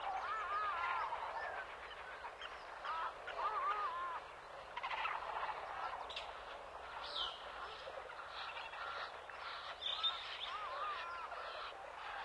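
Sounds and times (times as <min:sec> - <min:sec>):
jungle village ambience: 0:00.0 - 0:12.2.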